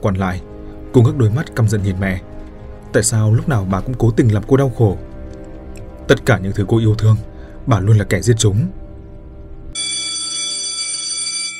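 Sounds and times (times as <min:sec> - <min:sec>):
speech: 0:00.0 - 0:05.1, 0:06.1 - 0:08.8
mobile phone ringing: 0:09.8 - 0:11.5.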